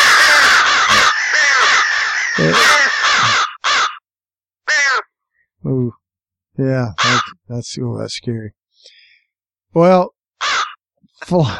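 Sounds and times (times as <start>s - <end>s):
crow cawing: 0.0s - 5.2s, 7.0s - 7.4s, 10.4s - 10.8s
speech: 2.4s - 2.8s, 6.6s - 9.0s, 9.7s - 10.2s, 11.2s - 11.5s.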